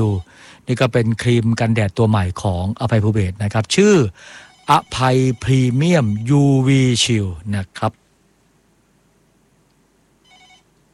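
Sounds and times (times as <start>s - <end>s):
low hiss: 0.0s - 10.9s
speech: 0.1s - 8.0s
caller's telephone ringing in a brief electronic burst: 4.4s - 6.2s, 10.2s - 10.7s.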